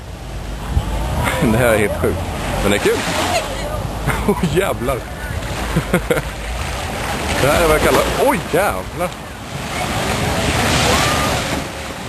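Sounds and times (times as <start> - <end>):
tsunami floodwater rushing and rising at a beach: 0.0 - 12.0
wind buffeting the microphone: 0.0 - 12.0
speech: 1.4 - 3.4, 4.2 - 5.2, 5.8 - 6.4, 7.4 - 9.2
laughter: 3.2 - 6.5.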